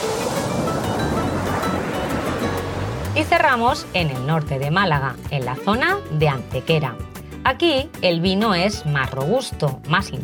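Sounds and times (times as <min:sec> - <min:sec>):
Mediterranean Sea surf rolling onto the shore: 0:00.0 - 0:05.7
speech: 0:03.2 - 0:10.2.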